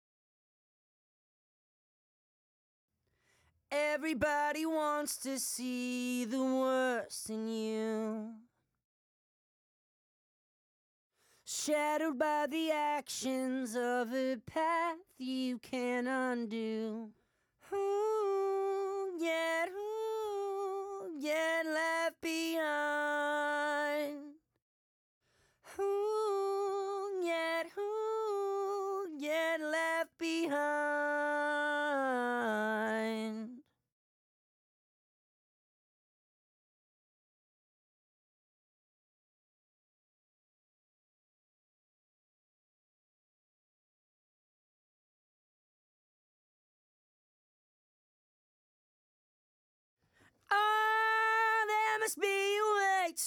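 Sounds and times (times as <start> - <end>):
main vocals: 3.7 - 8.4, 11.5 - 17.1, 17.7 - 24.4, 25.8 - 33.6, 50.5 - 53.2.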